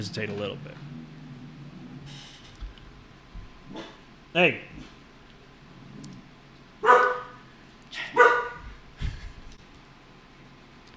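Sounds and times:
speech: 0:00.0 - 0:01.0, 0:03.7 - 0:04.9
young dog barking in high-pitched yaps: 0:06.8 - 0:07.4, 0:08.0 - 0:08.8.

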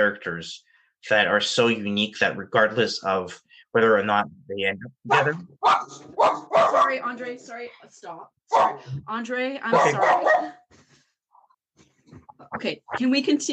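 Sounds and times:
speech: 0:00.0 - 0:10.7, 0:12.1 - 0:13.5
dog barking: 0:05.1 - 0:07.1, 0:08.5 - 0:08.9, 0:09.7 - 0:10.6.

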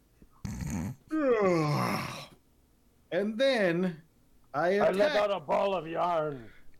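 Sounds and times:
person yawning: 0:01.1 - 0:02.4
speech: 0:03.2 - 0:06.6.

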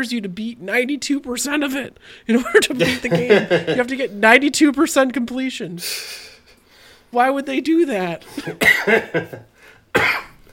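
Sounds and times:
speech: 0:00.0 - 0:06.3, 0:07.1 - 0:10.2
laughter: 0:02.5 - 0:04.1, 0:08.4 - 0:09.5
person coughing in a harsh fit: 0:08.3 - 0:09.2, 0:09.9 - 0:10.4.

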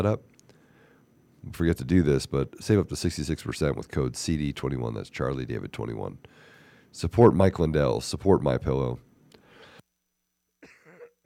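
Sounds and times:
speech: 0:00.0 - 0:00.3, 0:01.4 - 0:09.1
harsh coughs: 0:10.6 - 0:11.2.

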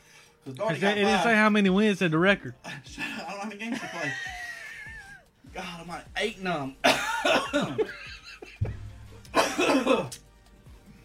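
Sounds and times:
speech: 0:00.4 - 0:04.4, 0:05.5 - 0:08.1, 0:09.6 - 0:10.2
laughter: 0:03.0 - 0:05.2, 0:06.8 - 0:10.2
person coughing hoarsely: 0:06.8 - 0:07.9, 0:09.3 - 0:10.2.

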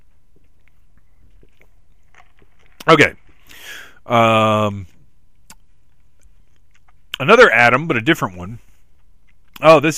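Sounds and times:
person sipping a drink: 0:01.0 - 0:04.0
speech: 0:02.9 - 0:03.2, 0:04.1 - 0:04.9, 0:07.2 - 0:08.7, 0:09.6 - 0:09.9
soft wet mouth clicks: 0:05.4 - 0:07.0.

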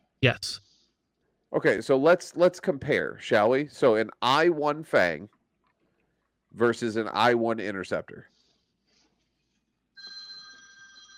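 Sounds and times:
speech: 0:00.2 - 0:00.6, 0:01.5 - 0:05.4, 0:06.5 - 0:08.3
telephone ringing with a bright electronic ring: 0:10.0 - 0:11.1.

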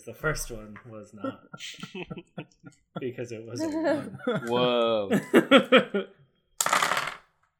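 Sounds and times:
speech: 0:00.0 - 0:06.2
laughter: 0:01.2 - 0:06.1
handful of dice clattering onto a hard surface for a tabletop game attack roll: 0:06.6 - 0:07.3.

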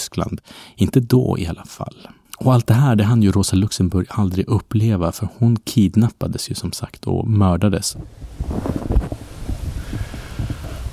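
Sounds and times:
speech: 0:00.2 - 0:09.0
gusty wind buffeting the microphone at an outdoor cemetery in drizzly weather: 0:07.9 - 0:10.9.

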